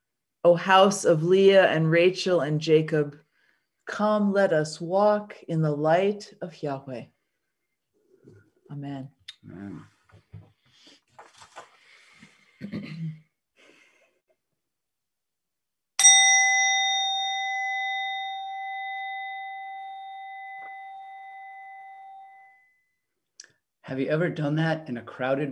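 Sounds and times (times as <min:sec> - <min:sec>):
speech: 0:00.4 - 0:03.2, 0:03.9 - 0:07.2, 0:08.2 - 0:09.9, 0:23.9 - 0:25.5
faint rustling: 0:09.9 - 0:12.4
wine glass tapped and ringing: 0:16.0 - 0:22.8.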